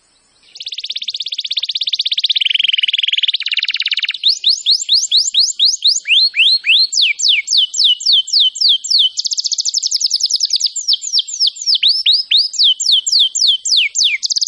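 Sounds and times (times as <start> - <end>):
canary singing: 0.4 - 14.4.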